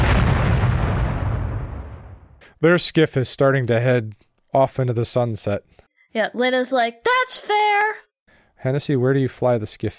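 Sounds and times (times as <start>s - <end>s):
deep rumbling explosion: 0.0s - 2.4s
speech: 2.6s - 9.9s.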